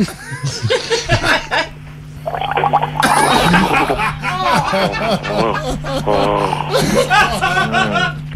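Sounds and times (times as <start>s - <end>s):
laughter: 0.0s - 1.8s, 3.0s - 8.2s
low steady hum: 0.7s - 8.3s
person gargling a mouthful of wine: 2.3s - 4.0s.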